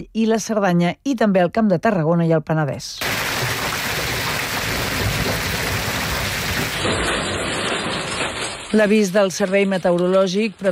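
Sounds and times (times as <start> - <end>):
speech: 0.0 - 3.2, 8.7 - 10.7
heavy rain pouring during a storm over the Pyrenees and Pre-Pyrenees of Catalonia: 3.0 - 10.7
low rumbling thunder: 4.5 - 8.7.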